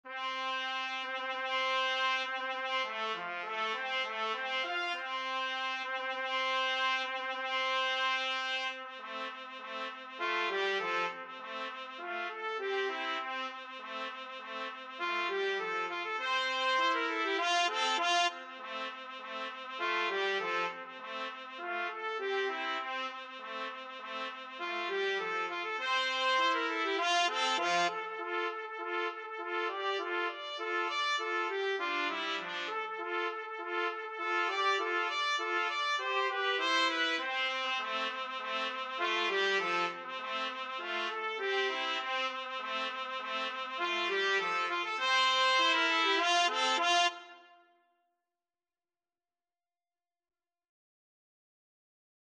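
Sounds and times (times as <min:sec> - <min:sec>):
trumpet duet: 0:00.1 - 0:47.6.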